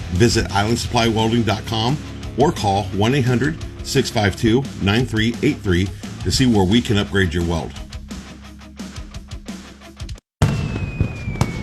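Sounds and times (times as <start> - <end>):
speech: 0.1 - 7.8
booming fireworks bursts: 10.4 - 11.6
dense crackling and popping firework explosions: 10.4 - 11.6
whistling firework rocket: 10.4 - 11.6.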